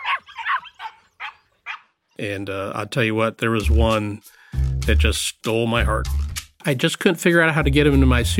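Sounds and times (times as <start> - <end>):
puppies yapping with high-pitched barks: 0.0 - 2.2
speech: 2.2 - 8.3.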